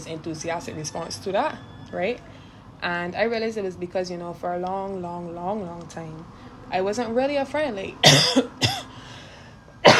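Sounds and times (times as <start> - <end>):
speech: 0.0 - 8.6
person coughing: 8.0 - 8.9.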